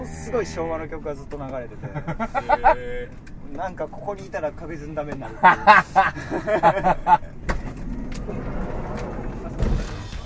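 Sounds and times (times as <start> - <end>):
speech: 0.3 - 7.4
laughter: 1.8 - 3.0, 5.2 - 7.4
bus rumbling past: 7.3 - 10.2.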